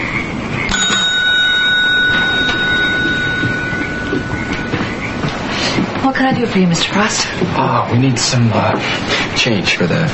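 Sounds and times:
counter service bell ding on motel counter: 0.7 - 5.5
speech: 6.1 - 10.1.

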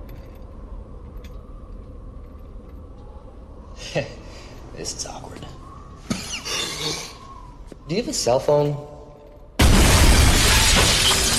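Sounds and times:
speech: 3.9 - 4.2, 4.8 - 5.7, 7.9 - 8.9
glass skylight smashing: 9.6 - 11.3
shower of shattering glass fragments: 9.6 - 11.3.

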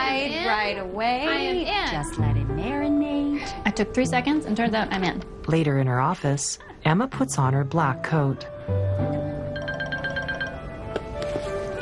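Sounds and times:
speech: 0.1 - 9.2
mobile phone ringtone in a pocket: 9.5 - 10.9, 11.6 - 11.8.

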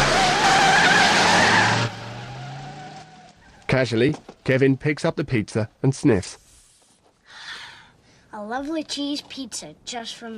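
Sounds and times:
car tires screeching spinning on an icy driveway: 0.0 - 4.6
speech: 3.7 - 6.4, 8.4 - 10.3.

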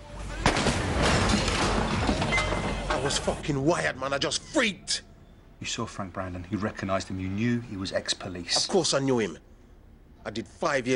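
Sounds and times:
gun fired through a small hatch in a door: 0.4 - 2.0
speech: 3.0 - 9.5, 10.2 - 10.9.

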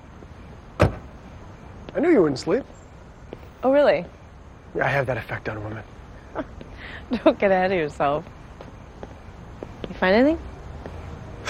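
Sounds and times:
quiet hiss: 0.0 - 11.4
car door shutting: 0.8 - 1.1
speech: 2.0 - 2.8, 3.6 - 8.4, 10.0 - 10.5.

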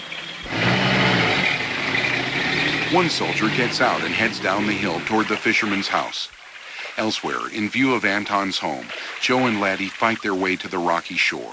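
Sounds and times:
engine of a truck carrying soldiers idling at a gate: 0.0 - 6.2
speech: 2.9 - 6.4, 7.0 - 11.5.

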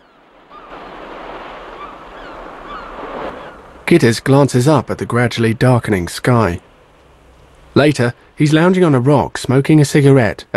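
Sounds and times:
ocean surf washing onto a beach: 0.0 - 6.5
speech: 3.9 - 6.7, 7.8 - 10.5.

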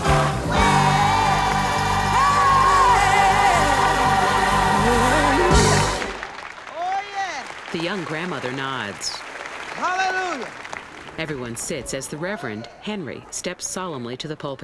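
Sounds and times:
loud audience singing in chorus: 0.0 - 6.3
music: 0.0 - 6.3
hands clapping along to singing: 0.0 - 11.7
speech: 7.8 - 14.6.

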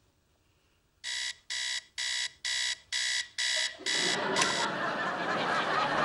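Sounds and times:
alarm clock ringing in electronic beeps: 1.0 - 4.8
laughter: 3.6 - 6.0.

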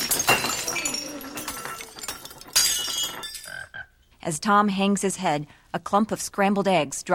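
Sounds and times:
row of glassware shattering from a pole smashing through it: 0.0 - 3.7
speech: 4.2 - 7.1.

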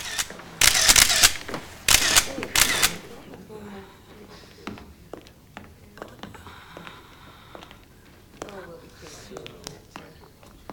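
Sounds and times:
police photographer's flash camera shutter clicks: 0.0 - 3.2.

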